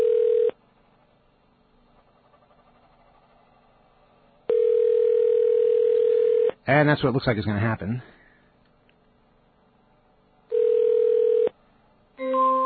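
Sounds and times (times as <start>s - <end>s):
telephone ringback tone on an unanswered call to a landline: 0.0s - 0.6s, 4.5s - 6.5s, 10.5s - 11.5s
speech: 6.7s - 8.2s.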